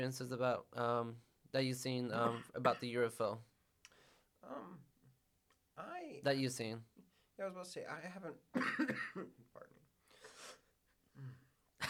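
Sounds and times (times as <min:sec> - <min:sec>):
speech: 0:00.0 - 0:03.5, 0:04.4 - 0:04.9, 0:05.8 - 0:09.8
person coughing: 0:02.2 - 0:02.9, 0:08.6 - 0:09.3.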